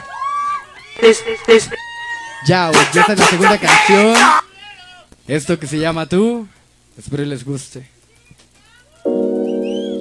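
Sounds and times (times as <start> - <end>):
live audience shouting and cheering: 0.0 - 5.0
speech: 1.0 - 4.4, 5.3 - 7.9
steady background of sustained tones: 9.1 - 9.9.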